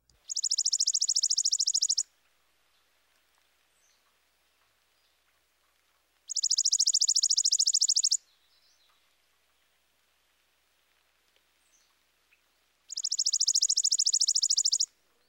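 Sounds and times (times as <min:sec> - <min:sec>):
chipping sparrow dry trill: 0:00.1 - 0:02.1, 0:06.3 - 0:09.0, 0:12.9 - 0:15.2.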